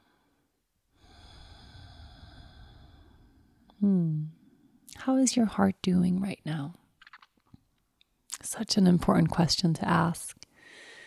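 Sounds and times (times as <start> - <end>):
breathing in and out through nose: 1.0 - 3.6, 10.6 - 11.0
speech: 3.8 - 4.1, 5.0 - 6.8, 8.4 - 10.4.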